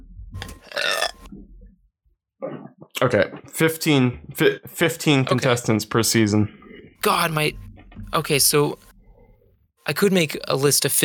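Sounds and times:
person burping: 0.5s - 1.3s, 2.4s - 2.9s
speech: 3.0s - 8.9s, 9.8s - 11.0s.

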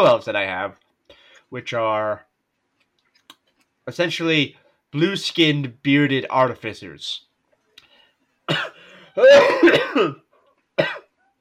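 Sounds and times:
speech: 0.0s - 0.8s, 1.5s - 2.3s, 3.9s - 7.3s, 8.5s - 10.2s, 10.8s - 11.0s
person coughing: 8.5s - 11.2s.

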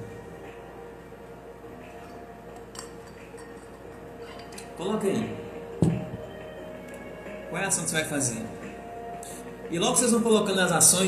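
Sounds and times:
steady low hum: 0.0s - 11.0s
glass clinking while someone drinks water: 2.1s - 4.8s
speech: 4.8s - 6.0s, 7.6s - 8.7s, 9.7s - 11.0s.

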